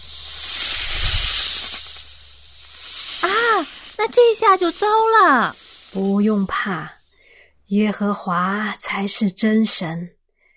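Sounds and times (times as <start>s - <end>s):
snakes hissing: 0.0s - 7.5s
speech: 3.6s - 7.0s, 7.7s - 10.2s.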